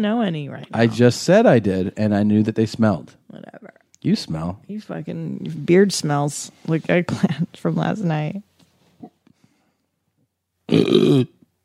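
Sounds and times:
speech: 0.0s - 9.1s, 10.7s - 11.4s
man belching: 0.6s - 1.2s, 10.7s - 11.4s.

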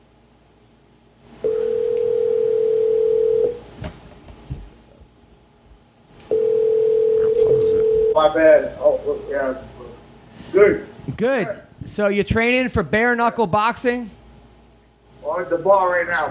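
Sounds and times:
outgoing phone call ringing tone: 1.4s - 3.6s, 6.3s - 8.2s
speech: 8.2s - 9.7s, 10.6s - 14.2s, 15.4s - 16.2s.

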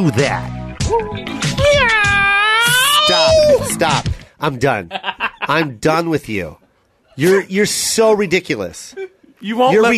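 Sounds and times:
speech: 0.0s - 2.1s, 3.1s - 6.6s, 7.2s - 9.9s
person imitating a cat meow: 1.6s - 3.6s.

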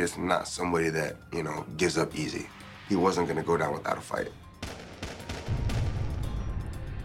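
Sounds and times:
speech: 0.0s - 4.4s
loud sharp gunshots: 4.6s - 6.4s.

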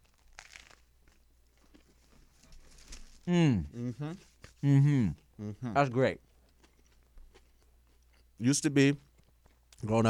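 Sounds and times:
crunchy bite into crusty bread: 0.0s - 2.0s
crackling chewing of crusty bread: 0.0s - 3.3s, 6.2s - 10.0s
speech: 3.3s - 6.3s, 8.4s - 9.1s, 9.8s - 10.0s.

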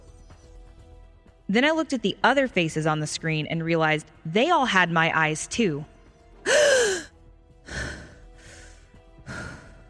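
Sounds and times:
speech: 1.5s - 6.9s
sharp loud voiced gasp: 6.5s - 7.1s, 7.7s - 9.8s
quieter deep breaths: 7.7s - 9.8s.

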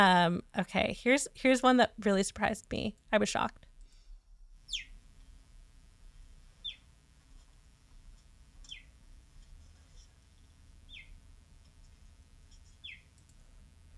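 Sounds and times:
speech: 0.0s - 3.6s
cheetah chirping: 4.7s - 5.0s, 6.6s - 6.9s, 8.7s - 9.0s, 10.8s - 11.2s, 12.8s - 13.2s.

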